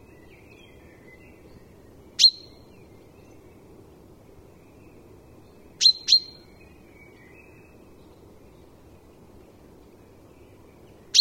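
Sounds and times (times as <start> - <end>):
common chaffinch chipping calls: 0.1 - 3.5, 4.7 - 7.7, 11.0 - 11.1.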